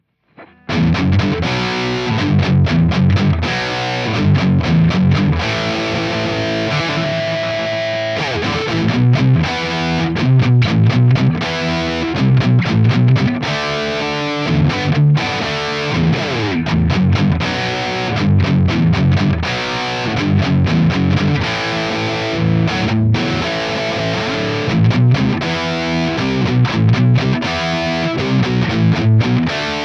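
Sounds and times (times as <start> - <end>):
guitar recorded with a microphone: 0.3 - 29.8.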